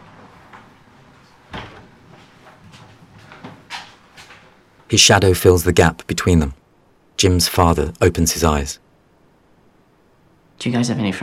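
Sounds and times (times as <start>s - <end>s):
hissy background: 0.0s - 11.2s
back door opening into a sitting room with clunks: 1.5s - 2.0s
speech: 4.9s - 6.6s, 7.2s - 8.8s, 10.6s - 11.2s.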